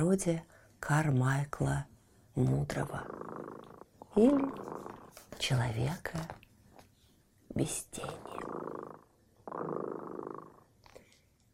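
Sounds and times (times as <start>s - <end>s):
speech: 0.0s - 3.3s, 4.2s - 4.7s, 5.4s - 6.4s, 7.6s - 8.8s, 9.5s - 9.9s
cat purring: 2.4s - 6.4s, 7.5s - 11.1s.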